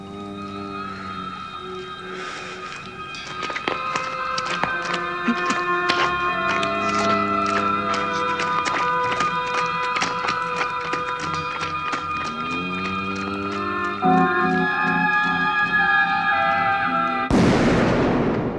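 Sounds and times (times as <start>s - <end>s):
tense orchestral music with tapping percussion in a film scene: 0.9s - 17.4s
single loud gunshot in a film scene: 17.3s - 18.5s.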